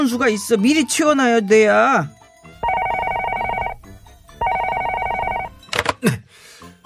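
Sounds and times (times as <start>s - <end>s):
speech: 0.0s - 2.2s
telephone ringing with trilling bells: 2.6s - 5.7s.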